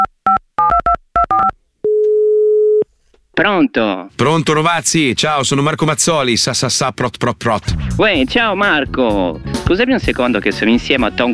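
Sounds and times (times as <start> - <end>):
electronic phone keypad beeps: 0.0 - 2.8
speech: 3.4 - 11.3.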